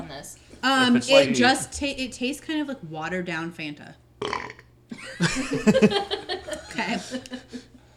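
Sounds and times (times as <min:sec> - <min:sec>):
speech: 0:00.1 - 0:04.0, 0:05.1 - 0:07.7
drawn-out gravelly burp after drinking a beverage: 0:04.2 - 0:04.7
laughter: 0:04.9 - 0:07.8.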